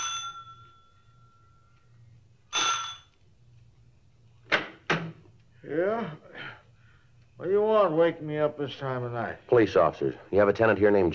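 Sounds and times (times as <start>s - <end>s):
front doorbell ringing: 0.0s - 1.7s, 2.5s - 3.1s
low steady hum: 0.0s - 11.1s
speech: 5.6s - 6.3s, 7.4s - 11.1s.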